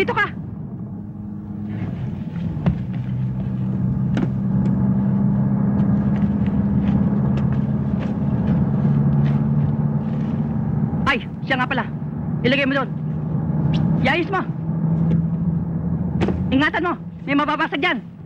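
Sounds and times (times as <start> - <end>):
speech: 0.0 - 0.3, 11.6 - 13.0, 14.0 - 15.1, 16.5 - 18.1
engine rumble inside a moving bus: 0.0 - 18.2.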